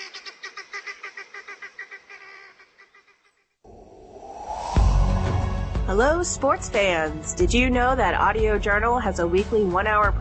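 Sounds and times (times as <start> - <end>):
helmeted guinea fowl squawking: 0.0 - 3.3
noisy burst: 3.7 - 6.9
speech: 5.9 - 10.1.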